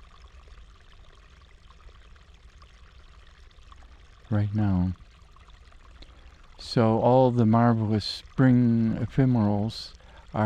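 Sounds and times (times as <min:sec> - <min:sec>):
stream water trickling in a cow-grazed habitat: 0:00.0 - 0:10.4
speech: 0:04.3 - 0:05.0, 0:06.7 - 0:10.4.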